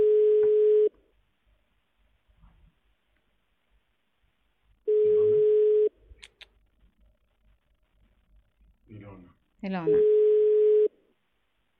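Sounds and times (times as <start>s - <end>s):
ringback tone of an unanswered telephone call: 0.0s - 0.9s, 4.9s - 5.9s, 9.9s - 10.9s
faint low clicks: 6.1s - 8.2s
speech: 9.6s - 10.1s.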